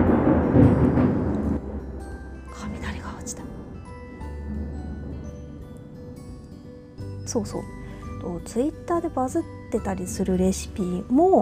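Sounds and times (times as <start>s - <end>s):
deep rolling rumble of thunder: 0.0s - 6.2s
speech: 7.3s - 11.4s.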